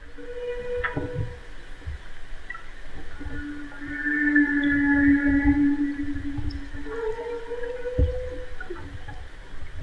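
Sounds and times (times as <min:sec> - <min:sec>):
two humpback whales surfacing and vocalizing with tonal moans: 0:00.0 - 0:01.5, 0:03.2 - 0:09.2
low rumbling watery background: 0:00.0 - 0:09.8.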